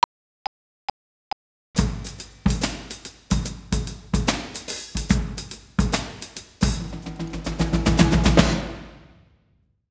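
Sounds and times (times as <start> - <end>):
drum solo: 1.8 - 9.1.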